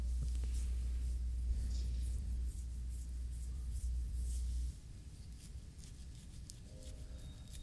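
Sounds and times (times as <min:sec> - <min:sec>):
steady low rumble: 0:00.0 - 0:05.4
scratching skin on face and ashy elbows: 0:00.0 - 0:07.6.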